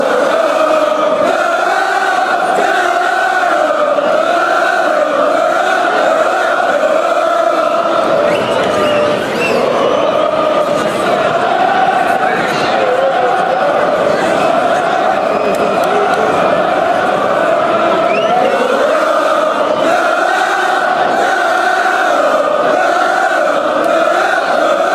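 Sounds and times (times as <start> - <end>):
football fans chanting: 0.0 - 24.9.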